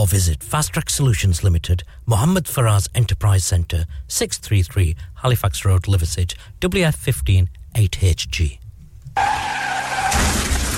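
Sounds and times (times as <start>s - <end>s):
speech: 0.0s - 8.6s
car tires skidding in a taxi accident: 9.2s - 10.7s.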